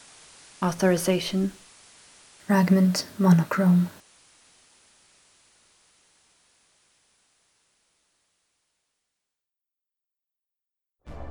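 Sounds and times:
white noise static: 0.0s - 8.9s
speech: 0.6s - 1.6s, 2.5s - 4.0s.

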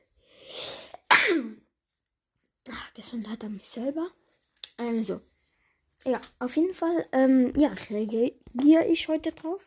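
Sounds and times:
person sneezing: 0.4s - 1.6s
speech: 2.7s - 4.2s, 4.8s - 5.3s, 6.0s - 9.6s.

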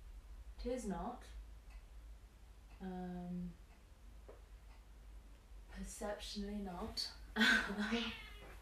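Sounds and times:
speech: 0.6s - 1.4s, 2.8s - 3.6s, 5.8s - 8.3s
cat meowing and chirruping: 7.9s - 8.5s.

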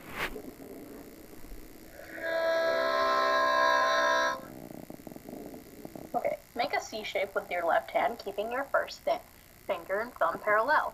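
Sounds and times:
harmonica imitating a train whistle: 1.9s - 4.5s
speech: 7.0s - 10.9s.

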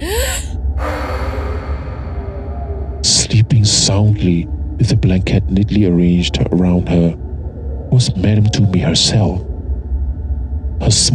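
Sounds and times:
woman giving a sharp startled gasp: 0.0s - 2.1s
steady low rumble of noise: 0.0s - 11.1s
speech: 3.2s - 7.2s, 7.9s - 9.5s, 10.8s - 11.1s.

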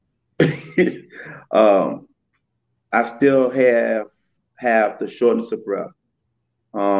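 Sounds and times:
person clearing their throat: 0.4s - 0.9s
person coughing: 0.4s - 1.4s
speech: 0.8s - 2.1s, 2.9s - 6.0s, 6.8s - 6.9s.

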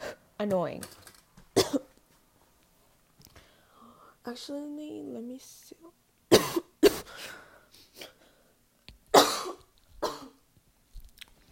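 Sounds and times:
speech: 0.4s - 1.0s, 4.2s - 6.0s
harsh coughing: 1.6s - 1.9s, 6.3s - 7.4s, 9.1s - 10.4s.

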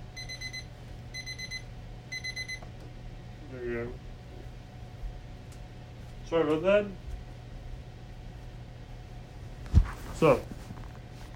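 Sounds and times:
low steady hum: 0.0s - 11.3s
alarm clock beeping in rapid high-pitched tones: 0.2s - 2.6s
speech: 6.3s - 7.0s, 10.2s - 10.6s.

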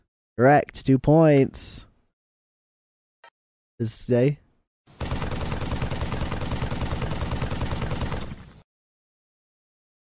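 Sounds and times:
speech: 0.4s - 1.9s, 3.8s - 4.4s
rapid automatic gunfire: 5.0s - 8.6s.

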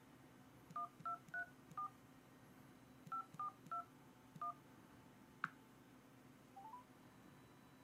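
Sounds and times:
telephone keypad dialing tones: 0.8s - 1.9s, 3.0s - 4.6s, 6.6s - 6.9s.

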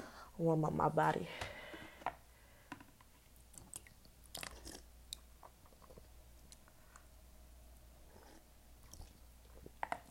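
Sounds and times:
speech: 0.4s - 1.4s
person sipping hot tea with slurps and swallows: 3.6s - 4.9s, 8.0s - 9.8s.

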